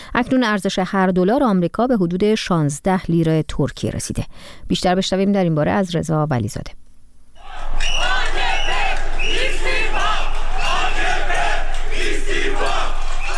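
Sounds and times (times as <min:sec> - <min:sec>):
speech: 0:00.2 - 0:06.8
crowd of street protesters chanting during demonstrations in Istanbul, Turkey: 0:07.4 - 0:13.3.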